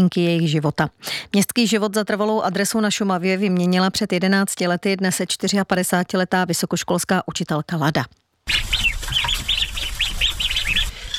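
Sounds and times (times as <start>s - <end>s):
speech: 0.0s - 9.2s
ducks calling after being fed on a farm: 8.5s - 11.1s.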